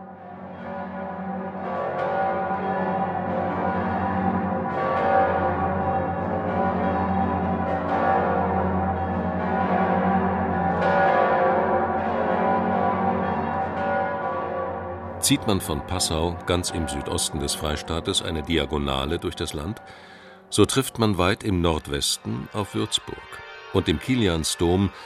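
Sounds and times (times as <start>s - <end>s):
full peal of deep cathedral bells: 0.0s - 25.0s
speech: 15.3s - 25.0s.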